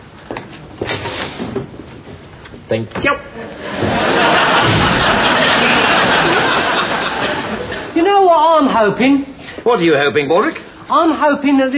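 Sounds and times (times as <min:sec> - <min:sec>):
speech: 0:02.7 - 0:04.1, 0:08.3 - 0:11.7
laughter: 0:03.4 - 0:08.0
wooden door swinging and banging shut: 0:04.6 - 0:05.2.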